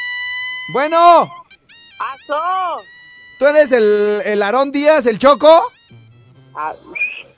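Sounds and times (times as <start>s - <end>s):
speech: 0.7s - 1.4s, 2.1s - 5.8s, 6.6s - 7.0s
brief voiced sounds and murmured tone: 5.9s - 7.3s
person whistling a short high whistle: 5.9s - 7.3s.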